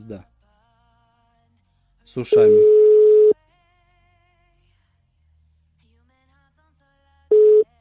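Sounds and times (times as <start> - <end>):
speech: 0.0 - 0.3, 2.1 - 2.8
telephone ringback tones on an unanswered call: 2.3 - 3.4, 7.3 - 7.6.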